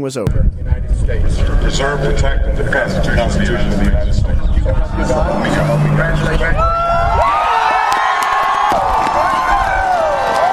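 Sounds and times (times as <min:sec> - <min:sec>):
speech: 0:00.0 - 0:07.3
large outdoor crowd cheering and jeering at a presidential swearing-in ceremony: 0:04.8 - 0:10.5.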